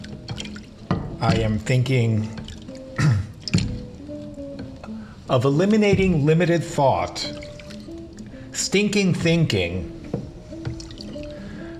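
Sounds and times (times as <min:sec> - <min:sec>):
dish lowered into soapy water sloshing: 0:00.0 - 0:01.6, 0:02.3 - 0:04.0, 0:07.0 - 0:08.3, 0:10.6 - 0:11.5
speech: 0:01.2 - 0:02.4, 0:05.3 - 0:07.4, 0:08.6 - 0:10.0.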